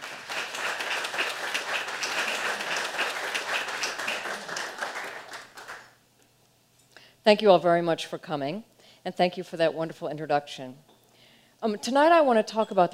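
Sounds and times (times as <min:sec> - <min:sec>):
room full of people applauding: 0:00.0 - 0:05.9
speech: 0:07.2 - 0:10.9, 0:11.6 - 0:12.9.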